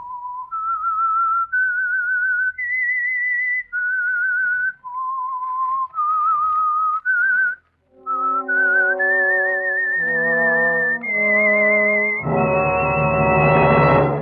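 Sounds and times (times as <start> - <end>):
lone eerie whistled melody: 0.0 - 14.2
ominous orchestral music: 7.9 - 14.2.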